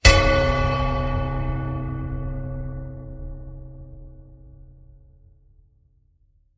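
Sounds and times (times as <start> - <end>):
bell strike: 0.0 - 5.0.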